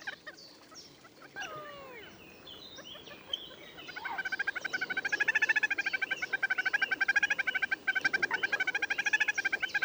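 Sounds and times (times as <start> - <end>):
little grebe whinnying trill: 1.4 - 4.4
other bird notes: 1.4 - 9.8.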